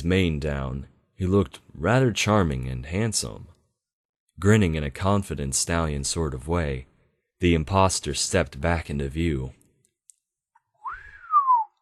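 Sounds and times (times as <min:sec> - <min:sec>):
speech: 0:00.0 - 0:03.6, 0:04.4 - 0:09.6
person giving an appreciative whistle: 0:10.8 - 0:11.7.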